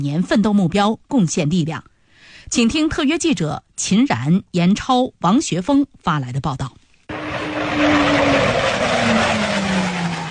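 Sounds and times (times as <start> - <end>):
speech: 0.0 - 6.8
J-20 fighter jets roaring as they take off for an air combat exercise: 7.1 - 10.2.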